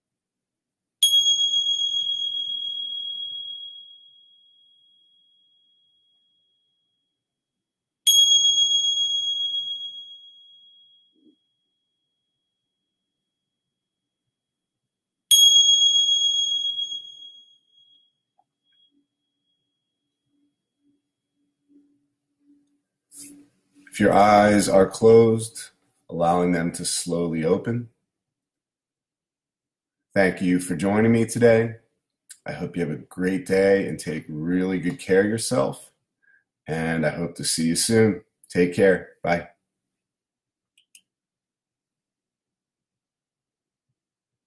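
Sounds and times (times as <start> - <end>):
meditation bell ringing: 1.0 - 7.2, 8.1 - 12.5, 15.3 - 21.0
speech: 22.6 - 27.9, 30.2 - 31.8, 32.4 - 35.9, 36.7 - 39.5.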